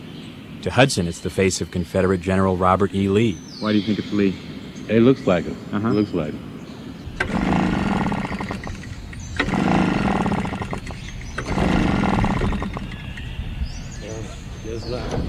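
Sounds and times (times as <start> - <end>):
speech: 0.6 - 6.5
gasoline leaf blower engine sputtering and surging: 7.0 - 15.2.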